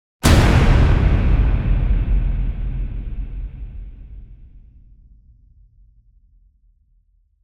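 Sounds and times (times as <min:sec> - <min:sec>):
big epic impact hit: 0:00.2 - 0:05.2.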